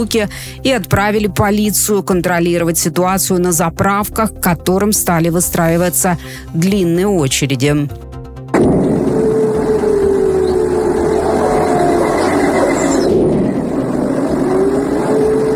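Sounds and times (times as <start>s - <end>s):
speech: 0.0s - 8.1s
distant explosions rumbling into a heavy roar: 8.5s - 15.5s.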